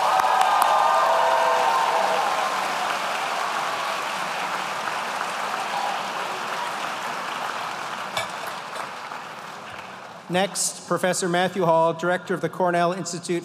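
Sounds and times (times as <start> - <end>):
large audience applauding graduates: 0.0 - 10.3
speech: 10.3 - 13.4.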